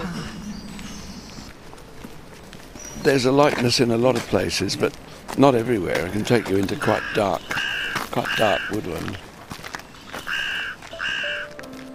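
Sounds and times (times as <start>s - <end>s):
speech: 3.0s - 7.6s, 8.2s - 9.3s
carrion crow cawing in a London cemetery woodland: 6.3s - 9.2s, 10.0s - 11.6s.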